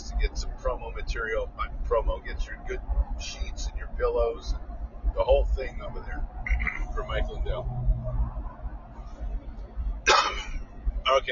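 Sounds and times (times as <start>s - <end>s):
low murmuring rumble: 0.0s - 11.3s
speech: 0.2s - 8.4s, 11.1s - 11.3s
cough: 10.1s - 10.6s.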